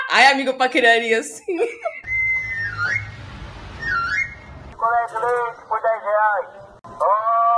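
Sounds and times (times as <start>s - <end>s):
speech: 0.1s - 2.0s, 4.8s - 7.5s
person whistling an imitation of an ice-cream vendor's flute call: 2.1s - 3.2s
low rumble: 2.1s - 4.8s.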